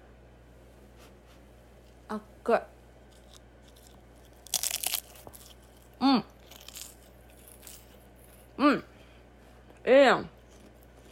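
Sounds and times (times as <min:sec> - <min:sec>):
speech: 0:02.1 - 0:02.8
crunchy bites of hot tarte tatin: 0:03.0 - 0:08.6
chewing hot tarte tatin: 0:03.1 - 0:08.6, 0:09.7 - 0:11.1.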